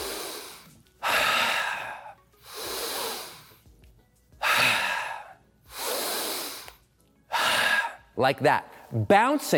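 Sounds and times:
deep breaths: 0.0 - 3.7, 4.4 - 8.1
speech: 8.2 - 9.5.

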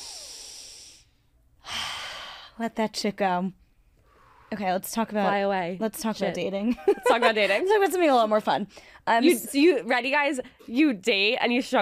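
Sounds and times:
deep breath in: 0.0 - 2.6, 4.0 - 4.5
speech: 2.6 - 3.6, 4.5 - 11.8.

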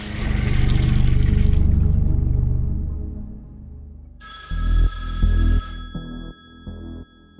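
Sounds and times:
toilet flushing: 0.0 - 2.2
telephone ringing in an office: 4.2 - 7.3.

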